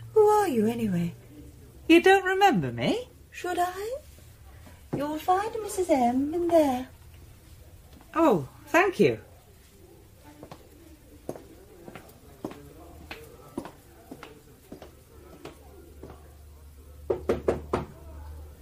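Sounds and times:
speech: 0:00.5 - 0:01.2, 0:01.9 - 0:04.1, 0:04.9 - 0:07.0, 0:08.1 - 0:09.3
knocking on a wooden door: 0:17.1 - 0:18.0.

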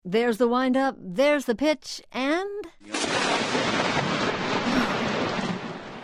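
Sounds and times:
speech: 0:00.1 - 0:03.0
thunderclap from a lightning strike during a baseball game: 0:02.9 - 0:06.0.

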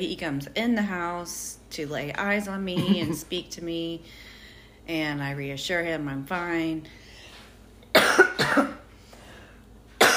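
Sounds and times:
speech: 0:00.0 - 0:04.3, 0:04.9 - 0:07.0, 0:08.2 - 0:08.8
person coughing from a tickle in the throat: 0:02.8 - 0:03.2, 0:07.9 - 0:08.9, 0:10.0 - 0:10.1.

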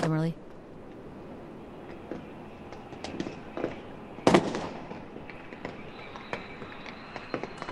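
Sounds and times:
steady rush: 0:00.0 - 0:07.7
fireworks going off over a crowded square: 0:01.9 - 0:07.7.

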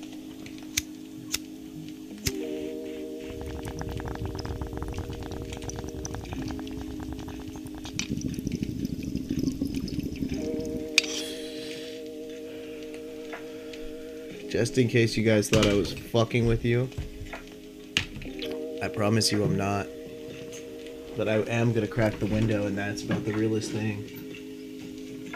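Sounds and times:
steady low tonal hum: 0:00.0 - 0:25.3
bubbling water from a bong hit: 0:02.3 - 0:14.0, 0:18.2 - 0:23.4
speech: 0:14.6 - 0:17.1, 0:18.9 - 0:20.0, 0:21.2 - 0:24.2.

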